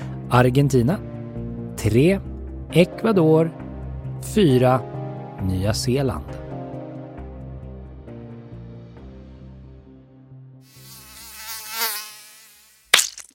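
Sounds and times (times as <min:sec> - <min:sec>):
speech: 0:00.3 - 0:01.1, 0:01.8 - 0:03.6, 0:04.2 - 0:06.4
mosquito whining buzz: 0:10.7 - 0:13.0
sharp smack: 0:12.9 - 0:13.3.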